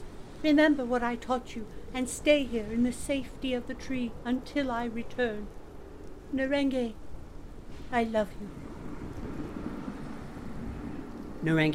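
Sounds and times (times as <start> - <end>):
storm wind: 0.0 - 11.7
speech: 0.4 - 5.6, 6.3 - 7.0, 7.9 - 8.6, 11.4 - 11.7
low rumbling undertone of a thunderstorm: 1.8 - 11.7
heavy rain in a thunderstorm: 6.4 - 11.7.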